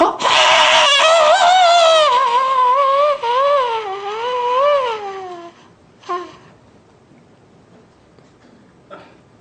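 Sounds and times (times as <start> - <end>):
brief sharp vocal squeak: 0.0 - 6.5
man making high-pitched wavering keening whine deep in his throat: 0.2 - 6.5.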